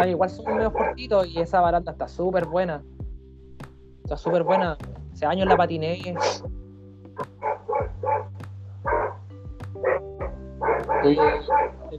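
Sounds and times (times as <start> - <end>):
distant dogs barking: 0.0 - 1.5, 4.2 - 4.8, 5.4 - 6.6, 7.2 - 11.9
speech: 0.0 - 3.0, 4.1 - 6.6, 11.0 - 11.9.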